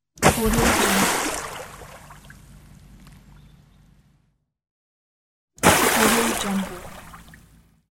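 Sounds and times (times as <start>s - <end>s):
water splashing: 0.2s - 2.4s, 5.6s - 7.4s.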